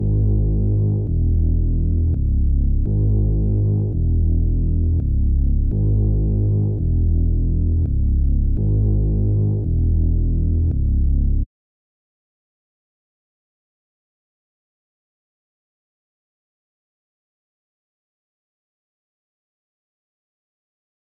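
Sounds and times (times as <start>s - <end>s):
bass line in G# minor: 0.0s - 11.5s.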